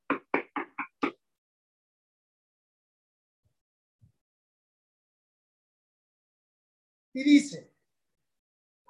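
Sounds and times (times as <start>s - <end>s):
firm knocking on a door: 0.0s - 1.2s
speech: 7.2s - 7.7s.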